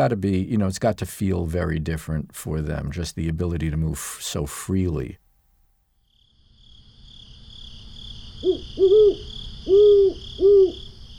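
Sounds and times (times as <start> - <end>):
speech: 0.0 - 5.2
owl hooting: 8.4 - 11.1.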